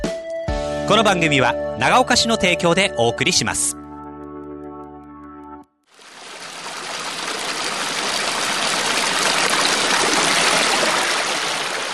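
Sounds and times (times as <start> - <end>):
speech: 0.9 - 3.8
spring water flowing from a source in a park in the Tochio area of Nagaoka: 5.9 - 11.9.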